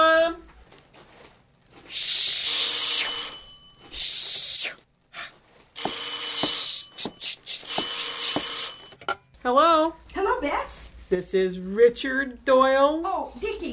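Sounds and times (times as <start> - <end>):
telephone ringing with a bright metallic bell trill: 2.4 - 3.9, 5.8 - 9.1
speech: 9.5 - 13.7.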